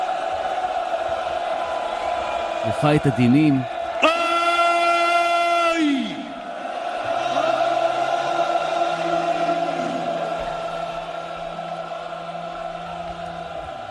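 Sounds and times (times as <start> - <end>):
huge crowd shouting in prayer in unison: 0.0 - 2.7, 3.6 - 13.8
speech: 2.6 - 3.7
loud continuous roar of many voices: 6.3 - 13.8.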